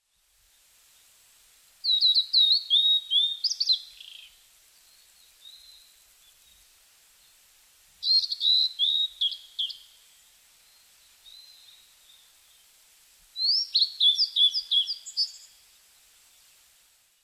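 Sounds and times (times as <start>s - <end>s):
blue-and-white flycatcher singing: 1.8s - 4.3s, 8.0s - 10.0s, 13.4s - 15.6s.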